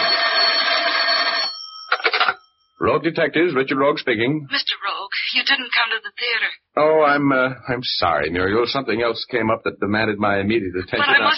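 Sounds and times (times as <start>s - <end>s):
telephone bell ringing in an office: 0.0s - 2.8s
speech: 2.8s - 11.3s
laughter: 9.9s - 11.3s.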